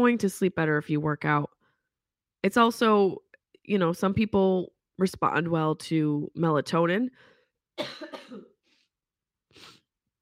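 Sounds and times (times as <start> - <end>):
speech: 0.0 - 1.6, 2.4 - 8.5
raspy breath: 7.2 - 7.5
harsh coughing: 7.8 - 8.6.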